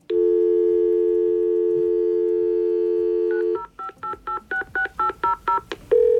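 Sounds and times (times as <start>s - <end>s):
fax machine dial tone: 0.1s - 4.6s, 6.0s - 6.1s
fax machine touch-tone dialing beeps: 0.1s - 6.1s.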